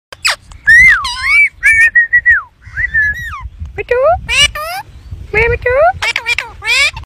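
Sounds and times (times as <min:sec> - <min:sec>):
Alexandrine parakeet: 0:00.2 - 0:01.9, 0:03.1 - 0:07.0.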